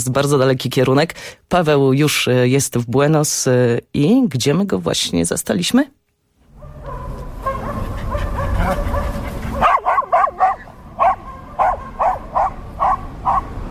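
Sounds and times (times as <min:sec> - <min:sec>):
speech: 0:00.0 - 0:06.0
dogs barking while playing with owners in a park in Buenos Aires: 0:06.5 - 0:13.7.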